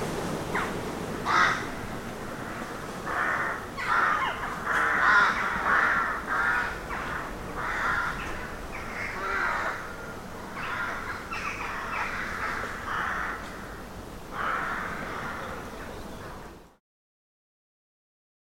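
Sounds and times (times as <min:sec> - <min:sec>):
many rooks cawing from trees: 0:00.5 - 0:16.0.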